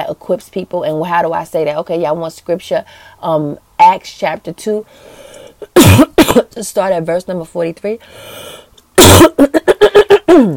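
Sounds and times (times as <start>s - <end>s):
speech: 0.1s - 8.6s, 9.2s - 9.9s
loud throat clearing: 9.0s - 10.5s.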